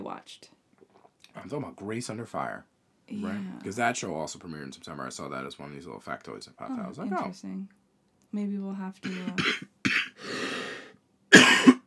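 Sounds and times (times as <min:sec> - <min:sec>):
speech: 0:00.2 - 0:00.6, 0:01.4 - 0:09.7
person coughing with short hacks and rasping cough: 0:09.0 - 0:11.8.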